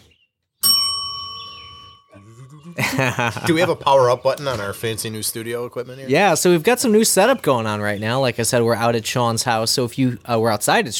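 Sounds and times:
bright bell ringing with a long shimmering decay: 0.6 - 2.2
laughter: 2.2 - 6.0
speech: 2.7 - 10.9.

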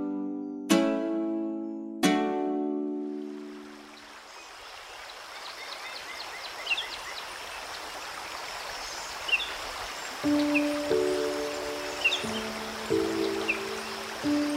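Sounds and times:
soft sustained tonal notes of a mandolin: 0.0 - 3.6, 10.3 - 14.5
flowing river water: 3.0 - 14.5
faint bird chirps: 3.9 - 14.5.

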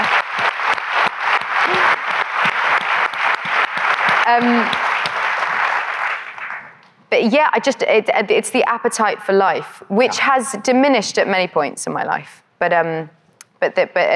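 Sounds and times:
audience applause: 0.0 - 6.7
speech: 4.3 - 4.8, 7.3 - 14.1.

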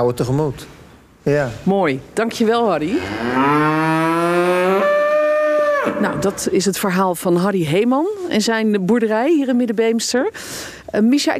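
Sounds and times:
speech: 0.0 - 3.8, 5.8 - 11.3
cow mooing on a dairy farm: 2.9 - 6.4.

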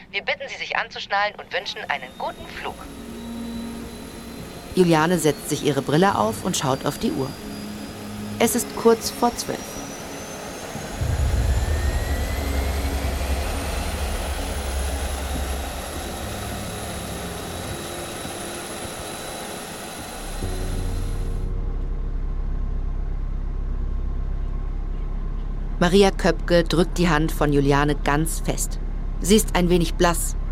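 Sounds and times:
speech: 0.1 - 3.1, 4.8 - 7.5, 8.4 - 9.8, 25.8 - 30.4
thin high passenger jet engine whines: 1.2 - 30.4
passenger jet engine roar during takeoff heard from inside the cabin: 1.8 - 21.5.

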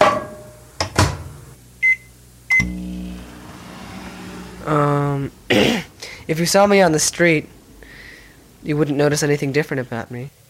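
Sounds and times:
microwave oven heating spaghetti bolognese with a low droning hum: 0.5 - 7.6
speech: 4.7 - 7.6, 8.6 - 10.4.

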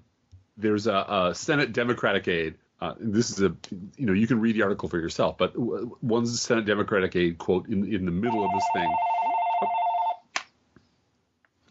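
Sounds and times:
speech: 0.6 - 9.8
telephone ringing in a steady electronic trill: 8.3 - 10.2.

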